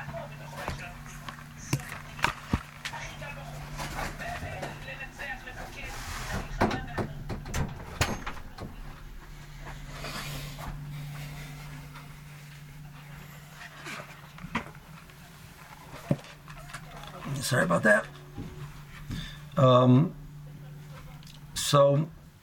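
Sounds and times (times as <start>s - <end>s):
faint shuffling: 0.0s - 7.0s, 8.4s - 19.6s
voices: 0.0s - 14.2s, 15.1s - 21.7s
low steady hum: 0.0s - 22.4s
door being pushed shut: 6.4s - 8.8s
speech: 17.5s - 18.1s, 19.6s - 20.2s, 21.7s - 22.2s.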